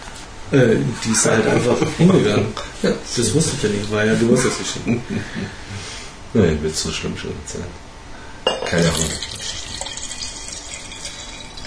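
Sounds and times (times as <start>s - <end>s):
speech: 0.5s - 7.9s, 8.7s - 9.6s
laughter: 4.3s - 5.8s
water flowing: 8.8s - 11.6s.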